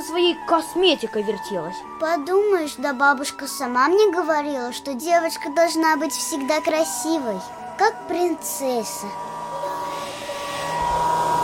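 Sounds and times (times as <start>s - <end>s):
speech: 0.1s - 9.3s
vacuum cleaner running during apartment cleaning: 9.1s - 11.4s.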